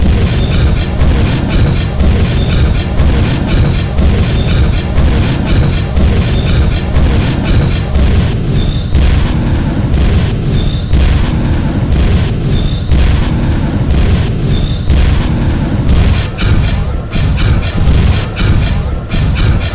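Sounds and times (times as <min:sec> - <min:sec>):
flamethrower: 0:00.0 - 0:19.7.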